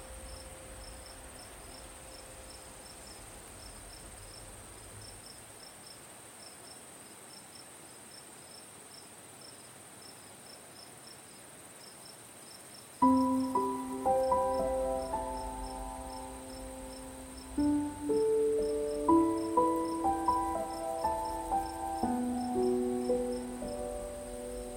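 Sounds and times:
soft piano playing slow ringing chords and single notes: 0.0 - 5.2, 13.0 - 24.7
crickets chirping at night: 0.0 - 24.7.

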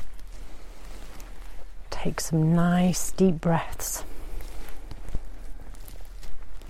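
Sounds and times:
footsteps crunching through a forest floor: 0.0 - 6.6
soft outdoor ambience in the woods: 0.0 - 6.6
speech: 2.0 - 4.1.

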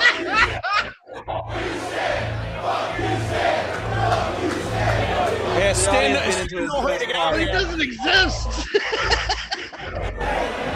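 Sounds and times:
wrestling arena crowd booing a wrestler's entrance in Jersey City: 0.0 - 6.9, 9.1 - 10.7
laughter: 0.0 - 10.7
speech: 5.8 - 9.4.

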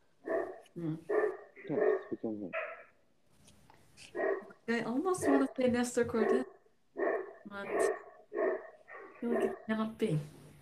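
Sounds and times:
dogs barking: 0.2 - 3.0, 4.1 - 9.8
speech: 0.8 - 2.6, 4.0 - 6.5, 7.5 - 8.0, 9.2 - 10.4.

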